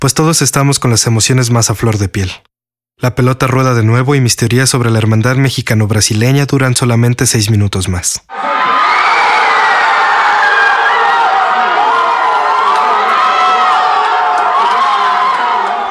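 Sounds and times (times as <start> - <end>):
speech: 0.0 - 8.7
huge stadium crowd of fans cheering a goal: 8.3 - 15.8.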